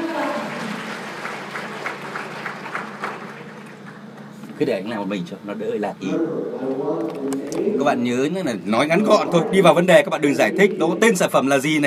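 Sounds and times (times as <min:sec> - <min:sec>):
audience applause: 0:00.0 - 0:04.3
speech: 0:04.6 - 0:11.8.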